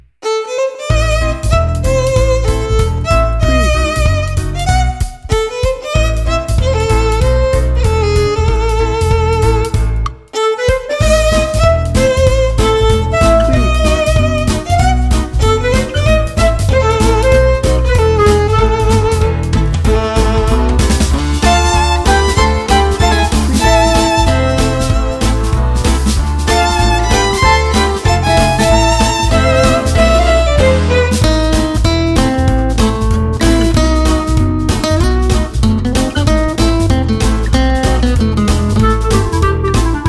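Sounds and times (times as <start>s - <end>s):
gypsy jazz fiddle music: 0.2s - 40.0s.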